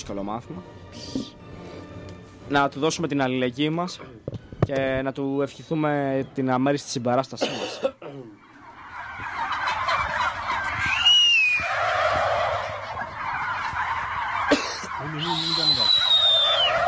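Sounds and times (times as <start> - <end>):
speech: 0.0 - 1.4, 2.5 - 8.4
turkey gobbling in warbling bursts: 8.3 - 16.8.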